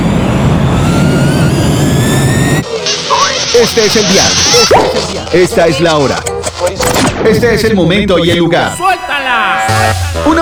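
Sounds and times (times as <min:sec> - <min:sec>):
jet airplane taking off for a flight: 0:00.0 - 0:05.3
speech: 0:03.6 - 0:10.3.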